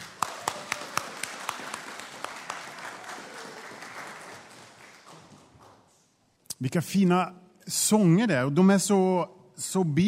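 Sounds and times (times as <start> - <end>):
audience applause: 0.0 - 5.8
speech: 6.6 - 10.0.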